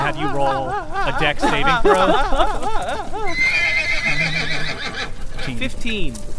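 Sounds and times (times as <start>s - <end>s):
laughter: 0.0s - 5.5s
faint clopping hooves: 0.0s - 6.3s
speech: 0.1s - 3.7s, 5.5s - 6.3s
burning horse whinnying and squealing: 2.7s - 5.6s.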